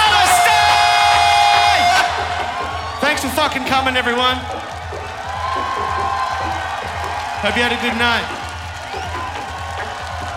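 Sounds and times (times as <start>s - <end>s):
large crowd screaming and yelling a chant in unison: 0.0s - 10.3s
speech: 3.2s - 4.7s, 7.4s - 8.4s.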